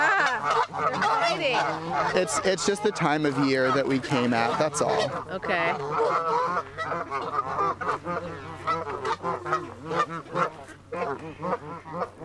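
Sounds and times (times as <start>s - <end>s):
flock of geese honking: 0.0s - 12.2s
low steady hum: 0.0s - 12.2s
speech: 0.4s - 9.4s.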